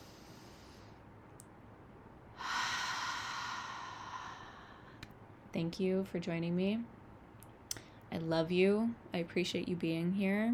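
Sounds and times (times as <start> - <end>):
big deep breath during a guided relaxation: 0.0 - 1.0, 2.4 - 5.1
speech: 5.5 - 7.0, 8.2 - 10.5.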